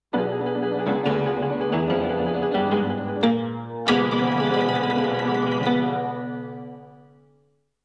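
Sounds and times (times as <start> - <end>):
piano flourish: 0.2 - 7.2.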